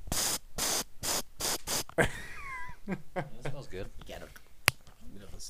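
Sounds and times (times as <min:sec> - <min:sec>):
mace spray hissing out of a canister: 0:00.1 - 0:02.0
speech: 0:02.9 - 0:04.4, 0:05.2 - 0:05.4.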